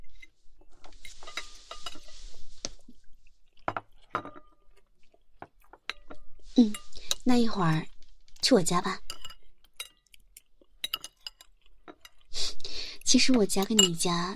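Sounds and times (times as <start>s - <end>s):
person chewing food: 0.1s - 7.2s, 9.2s - 13.0s
speech: 6.6s - 9.0s, 13.1s - 14.3s.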